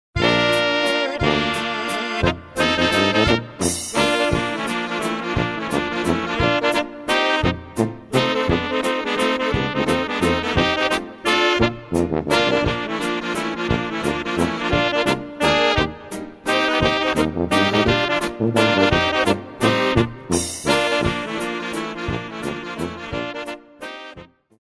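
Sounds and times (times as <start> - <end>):
trombone: 0.2 - 24.3.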